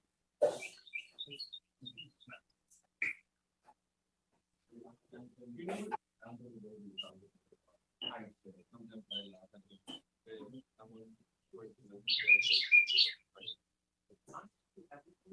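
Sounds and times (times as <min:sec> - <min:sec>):
pet bird chirping in bright high tweets: 0:00.4 - 0:02.4, 0:06.4 - 0:07.2, 0:08.0 - 0:11.1, 0:11.8 - 0:13.6
people talking in low voices: 0:04.7 - 0:15.3.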